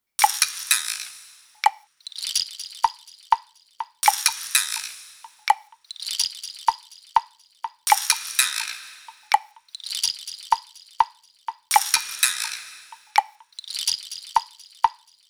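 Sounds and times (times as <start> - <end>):
pop percussion drum loop at 125: 0.2 - 0.5, 2.8 - 15.1.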